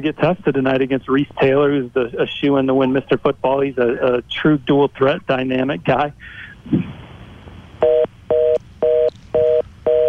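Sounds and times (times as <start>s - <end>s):
speech: 0.0s - 7.0s
telephone line beeps after a call is hung up: 7.8s - 10.0s.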